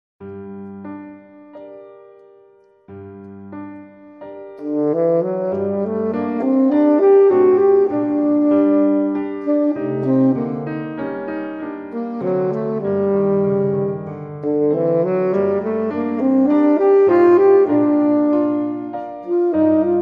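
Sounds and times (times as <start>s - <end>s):
piano: 0.2s - 20.0s
tenor saxophone: 4.6s - 20.0s.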